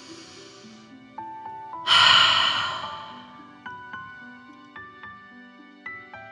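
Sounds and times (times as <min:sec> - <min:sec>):
forceful breath in through nose and out through mouth: 0:01.9 - 0:03.4.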